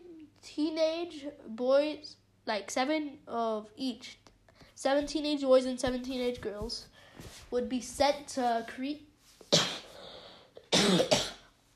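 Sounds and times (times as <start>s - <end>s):
speech: 0.4s - 9.7s, 10.8s - 11.2s
harsh forceful coughs: 9.5s - 11.6s.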